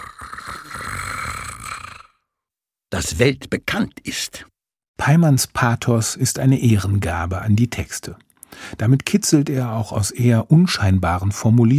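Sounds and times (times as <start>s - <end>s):
voice imitating a rattling snore: 0.0s - 2.3s
speech: 3.0s - 11.7s.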